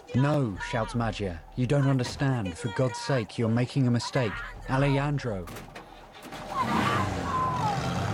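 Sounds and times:
speech: 0:00.2 - 0:05.8
truck engine revving as the vehicle pulls away: 0:06.2 - 0:08.1.

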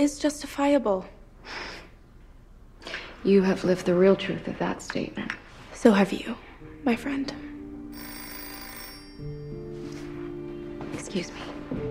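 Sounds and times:
speech: 0:00.0 - 0:01.7, 0:03.2 - 0:07.5, 0:11.0 - 0:11.8
telephone ringing with electronic tone: 0:07.9 - 0:10.0.

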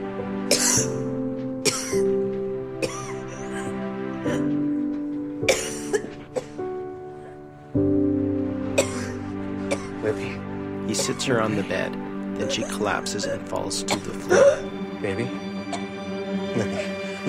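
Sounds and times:
steady sustained music: 0:00.0 - 0:17.2
woman coughing: 0:00.5 - 0:00.8, 0:01.7 - 0:02.0, 0:02.8 - 0:03.7, 0:05.5 - 0:06.6, 0:08.8 - 0:09.9, 0:13.9 - 0:14.7
speech: 0:00.5 - 0:01.1, 0:11.2 - 0:15.5.

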